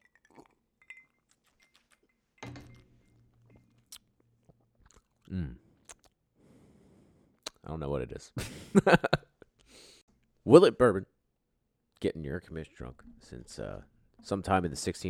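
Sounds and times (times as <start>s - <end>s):
glass clinking: 0.0s - 4.0s
mouth sounds: 4.9s - 6.1s
speech: 7.7s - 9.1s, 10.5s - 11.1s, 12.0s - 15.0s.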